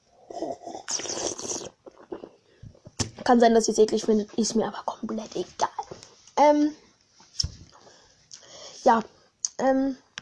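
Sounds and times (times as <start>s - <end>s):
person gulping a drink: 0.3s - 2.4s
person slurping a drink: 0.3s - 3.2s
speech: 3.3s - 5.7s, 6.4s - 6.8s, 8.9s - 10.0s.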